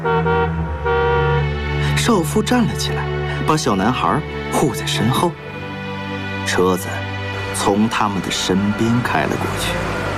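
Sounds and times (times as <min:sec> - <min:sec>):
car horn long steady blast: 0:00.0 - 0:01.8
speech: 0:02.1 - 0:05.4, 0:06.5 - 0:07.0, 0:07.6 - 0:10.0.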